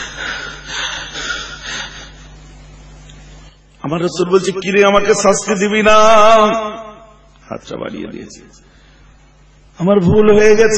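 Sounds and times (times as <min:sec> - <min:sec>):
person imitating heavy panting after running: 0:00.0 - 0:02.2
speech: 0:03.8 - 0:06.8, 0:07.5 - 0:08.8, 0:09.8 - 0:10.7.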